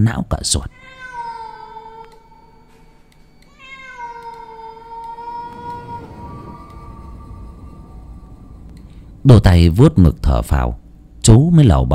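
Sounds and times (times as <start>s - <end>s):
speech: 0.0s - 1.0s, 9.2s - 11.9s
cat yowling: 0.7s - 2.7s, 3.4s - 8.6s
rushing noise: 5.2s - 11.2s.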